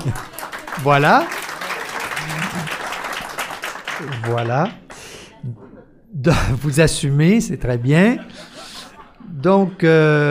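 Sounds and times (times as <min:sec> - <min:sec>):
speech: 0:00.0 - 0:01.4, 0:04.0 - 0:04.8, 0:05.4 - 0:08.5, 0:09.4 - 0:10.2
audience applause: 0:00.0 - 0:05.3
laughter: 0:01.6 - 0:03.3, 0:05.1 - 0:06.7, 0:07.4 - 0:10.2.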